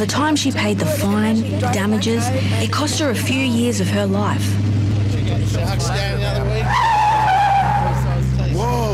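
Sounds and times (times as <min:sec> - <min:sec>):
speech: 0:00.0 - 0:07.0
car engine rumble: 0:00.0 - 0:08.9
car tires squealing in a long wavering skid: 0:06.5 - 0:08.3.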